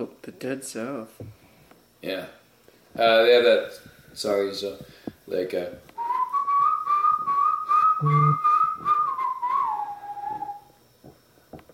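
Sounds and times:
speech: 0.0 - 1.4, 2.0 - 2.4, 3.0 - 5.9, 8.0 - 8.5
whistled melody of a folk song: 6.0 - 10.8
low buzzy tone: 8.0 - 9.4.

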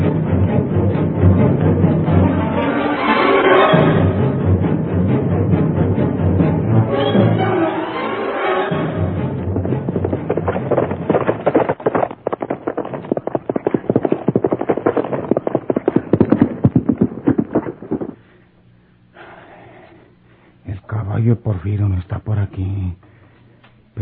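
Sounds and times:
quiet low hum: 0.0 - 24.0
hooves of a dapple-grey horse clip-clopping: 8.8 - 18.2.

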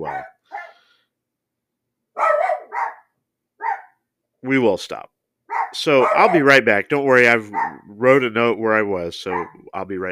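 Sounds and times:
dogs barking at the mail delivery: 0.0 - 0.8, 2.2 - 4.0, 5.5 - 6.6, 7.3 - 8.0, 9.3 - 10.1
speech: 4.5 - 10.1.

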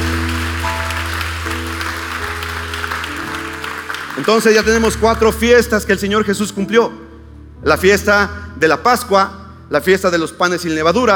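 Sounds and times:
audience applauding: 0.0 - 5.3
speech: 4.2 - 7.0, 7.6 - 11.1.

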